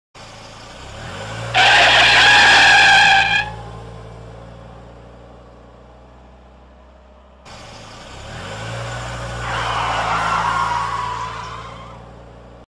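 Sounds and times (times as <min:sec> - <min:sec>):
car braking: 0:00.2 - 0:04.2, 0:07.2 - 0:12.6.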